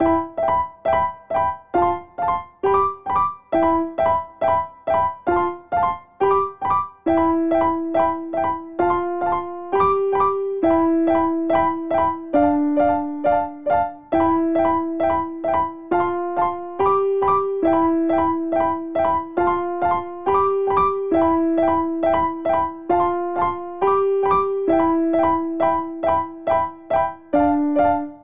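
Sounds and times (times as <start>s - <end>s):
Grand Piano arpeggiated broken chords in C major: 0.0s - 28.2s.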